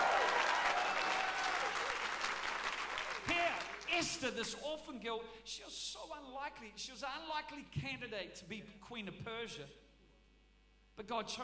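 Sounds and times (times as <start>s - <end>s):
sustained applause from a large crowd: 0.0s - 3.9s
cheering voices: 0.0s - 4.0s
speech: 4.0s - 9.8s, 11.0s - 11.4s.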